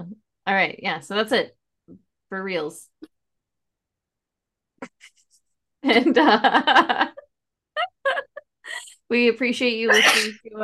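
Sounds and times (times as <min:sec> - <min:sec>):
speech: 0:00.0 - 0:03.0, 0:05.8 - 0:07.2, 0:09.1 - 0:10.6
loud sneeze: 0:09.9 - 0:10.4.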